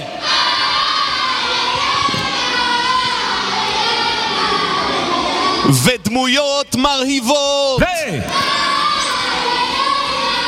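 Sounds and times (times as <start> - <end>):
large group of children shouting in chorus: 0.1 - 5.7, 8.3 - 10.4
speech: 5.8 - 8.7.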